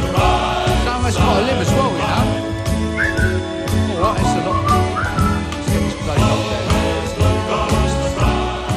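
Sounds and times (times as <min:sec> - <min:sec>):
upbeat band accompaniment: 0:00.0 - 0:08.7
whistled melody: 0:02.8 - 0:05.9.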